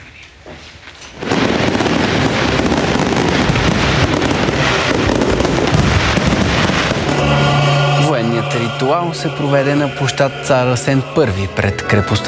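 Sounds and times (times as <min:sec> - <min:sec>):
ceremonial fireworks at a military roll-call ritual in Veliko Tarnovo: 0:00.4 - 0:10.6
speech: 0:08.9 - 0:12.2.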